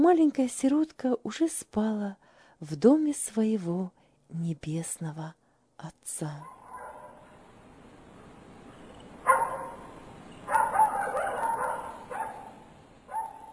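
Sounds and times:
speech: 0:00.0 - 0:06.6
dog barking loudly inside a building: 0:06.5 - 0:07.3, 0:09.2 - 0:13.5.

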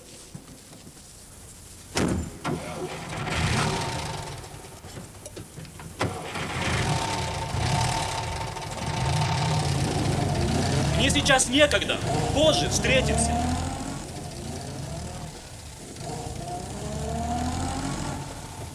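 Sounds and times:
car engine starting with sharp clunks: 0:02.0 - 0:18.7
speech: 0:11.2 - 0:13.6.

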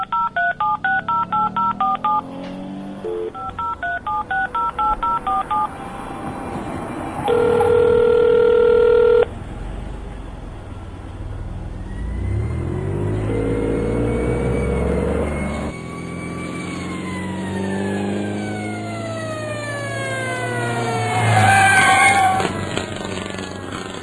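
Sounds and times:
touch-tone telephone keypad beeps: 0:00.0 - 0:02.3, 0:03.0 - 0:05.7, 0:07.3 - 0:09.3
ambulance engine arriving: 0:00.0 - 0:24.0.

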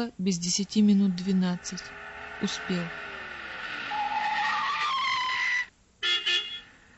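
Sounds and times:
speech: 0:00.0 - 0:03.1
car tires squealing as it brakes to a stop: 0:01.0 - 0:05.7
car horn honks: 0:05.5 - 0:06.8.

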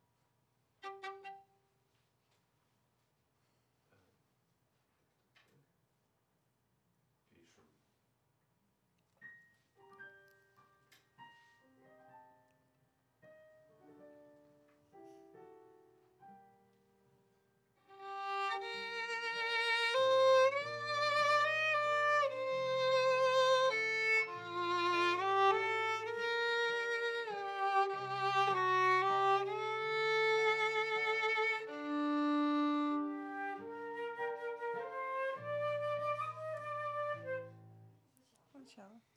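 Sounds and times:
viola: 0:00.8 - 0:01.6, 0:17.9 - 0:37.8.

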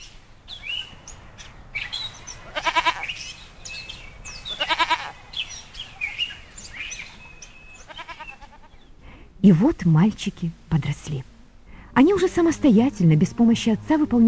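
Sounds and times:
birds chirping and tweeting outdoors: 0:00.0 - 0:09.0
little goats bleating: 0:02.4 - 0:03.2, 0:04.4 - 0:05.2, 0:07.8 - 0:08.8
speech: 0:09.4 - 0:11.3, 0:12.0 - 0:14.2.

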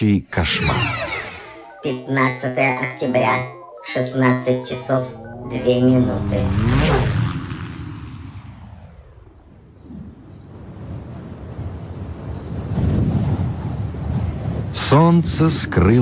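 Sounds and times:
speech: 0:00.0 - 0:01.1, 0:01.8 - 0:07.2, 0:14.9 - 0:16.0
gusting autumn wind roaring: 0:04.2 - 0:16.0.

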